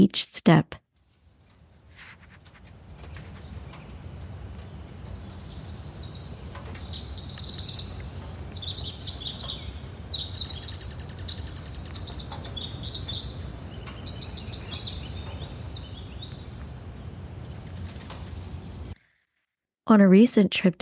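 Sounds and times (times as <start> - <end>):
speech: 0.0 - 0.8, 19.9 - 20.8
Pacific wren singing: 1.4 - 19.0
low hum: 2.6 - 19.0.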